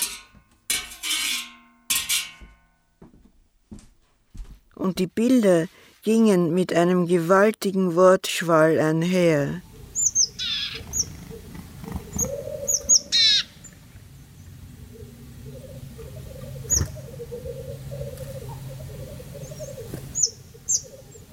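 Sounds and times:
speech: 0:04.8 - 0:09.7
black grouse cocks calling: 0:09.6 - 0:21.3
short sharp high chirps from other birds: 0:09.6 - 0:21.3.

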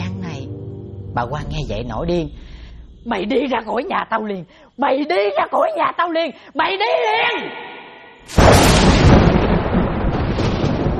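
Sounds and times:
speech: 0:01.2 - 0:08.8
thunder sound effect for a stormy night: 0:08.3 - 0:10.9.

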